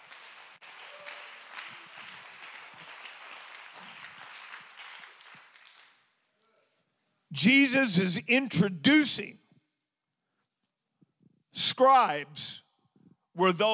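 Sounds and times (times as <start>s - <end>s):
audience clapping in praise during a gospel sermon: 0.0s - 6.3s
speech: 7.3s - 9.4s, 11.8s - 12.6s, 13.4s - 13.7s.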